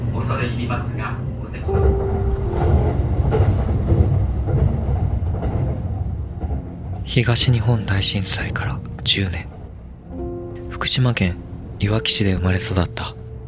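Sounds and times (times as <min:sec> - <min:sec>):
train rolling along rails toward Iwaki, Fukushima Prefecture, Japan: 0:00.0 - 0:09.7
speech: 0:00.3 - 0:03.5, 0:07.1 - 0:09.5, 0:10.8 - 0:13.2.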